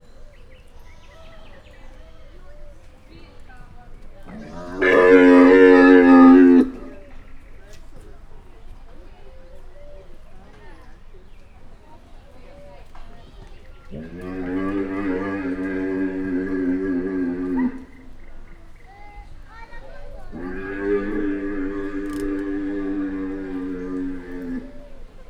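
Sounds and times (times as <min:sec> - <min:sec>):
male Bactrian camel calling after the female in a zoo: 0:04.3 - 0:07.0, 0:13.9 - 0:18.2, 0:20.2 - 0:25.2.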